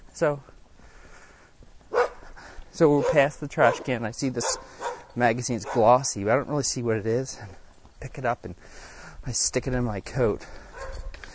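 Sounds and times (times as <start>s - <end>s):
speech: 0.2s - 0.5s, 2.8s - 10.6s
small dog barking: 1.9s - 2.2s, 3.0s - 5.9s, 10.8s - 11.1s.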